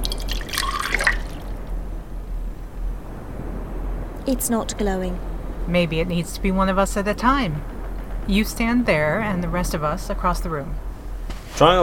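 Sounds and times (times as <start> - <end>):
saline and water mix pouring with splashing trickle: 0.0 - 1.7
saline solution dripping: 0.0 - 1.8
low watery hiss: 0.0 - 11.8
speech: 4.3 - 7.7, 8.3 - 10.8, 11.6 - 11.8.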